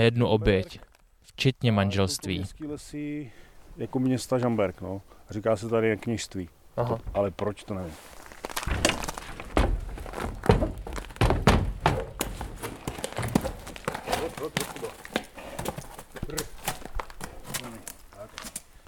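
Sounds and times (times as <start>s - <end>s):
speech: 0.0s - 8.9s
horse hooves on hollow ramp stepping out of trailer: 8.5s - 18.8s.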